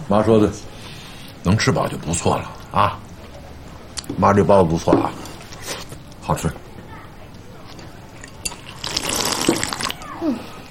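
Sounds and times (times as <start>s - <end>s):
speech: 0.1s - 0.8s, 1.4s - 3.0s, 4.1s - 6.6s
water gurgling: 8.0s - 10.3s.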